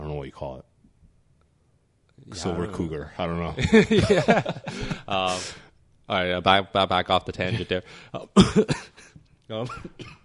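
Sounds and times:
speech: 0.2 - 0.7, 2.2 - 10.2
laughter: 3.6 - 5.4
person coughing: 8.4 - 10.2
throaty vocal sound, possibly a throat clear: 8.4 - 10.2.

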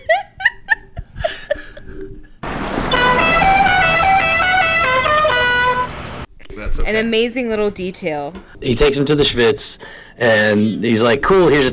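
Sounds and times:
short bursts of laughter: 0.0 - 2.4
musical car horn playing a film theme: 2.8 - 6.3
speech: 6.8 - 11.7.

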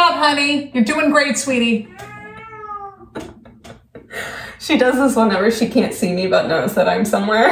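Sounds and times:
speech: 0.2 - 2.2, 4.2 - 7.4
cat meowing while carrying a toy in her mouth: 1.8 - 3.3.

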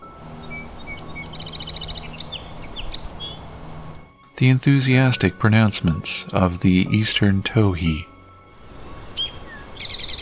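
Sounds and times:
song sparrow singing: 0.0 - 3.6, 8.0 - 10.1
speech: 4.4 - 8.1.

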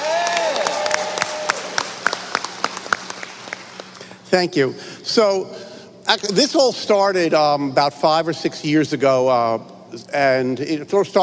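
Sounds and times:
audience applauding: 0.0 - 4.1
speech: 4.3 - 11.2.

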